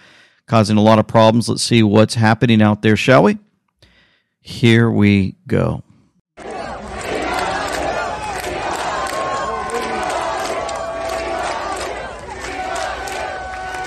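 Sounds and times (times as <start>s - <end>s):
speech: 0.5s - 3.5s, 4.4s - 5.9s
rally crowd cheering and chanting: 6.4s - 13.8s.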